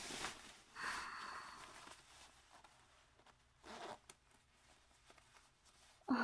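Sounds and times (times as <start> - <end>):
quiet rustling: 0.0 - 6.1
trouser fly zipper being pulled down: 3.6 - 4.2.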